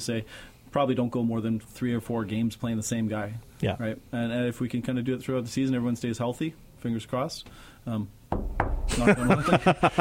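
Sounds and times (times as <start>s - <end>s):
speech: 0.0s - 8.4s, 9.0s - 9.9s
knocking on a hard surface for luck: 8.3s - 9.1s
laughter: 8.9s - 9.9s.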